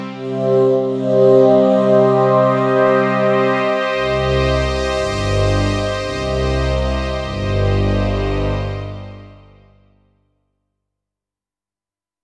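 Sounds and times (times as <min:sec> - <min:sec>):
synthesizer sound: 0:00.1 - 0:09.9.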